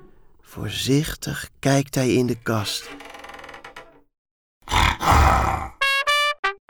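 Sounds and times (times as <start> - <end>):
speech: 0.5 - 3.0
tiger growling and snarling: 4.6 - 5.8.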